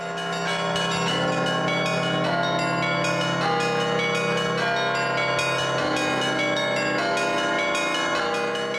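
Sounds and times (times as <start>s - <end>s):
church bells ringing: 0.0s - 8.7s.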